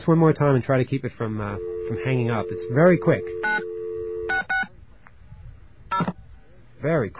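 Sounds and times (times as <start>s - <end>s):
speech: 0.0s - 3.7s, 6.0s - 6.2s, 6.8s - 7.1s
faint hum: 0.0s - 7.1s
steady telephone dial tone: 1.6s - 4.6s.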